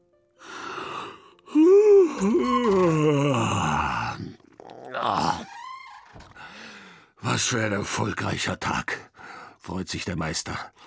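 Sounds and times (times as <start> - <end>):
loud yawn: 0.5 - 5.5
speech: 2.2 - 2.5, 7.4 - 10.8.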